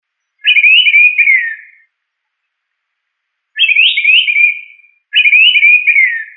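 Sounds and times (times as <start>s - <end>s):
bird singing warbled whistled phrases: 0.2s - 1.9s, 3.6s - 6.3s.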